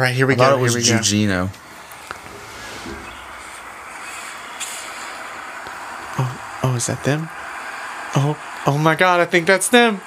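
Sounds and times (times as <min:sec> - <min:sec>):
speech: 0:00.0 - 0:01.6, 0:06.8 - 0:07.4, 0:08.1 - 0:10.0
large bus engine rumbling in a noisy street: 0:00.8 - 0:07.4
bus air brakes hissing: 0:02.2 - 0:08.7.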